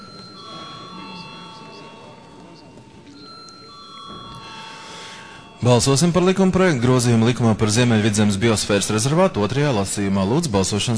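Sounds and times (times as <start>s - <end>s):
electric parliament bell ringing before a vote: 0.0s - 7.4s
murmur of voices: 0.0s - 10.9s
speech: 5.6s - 10.9s.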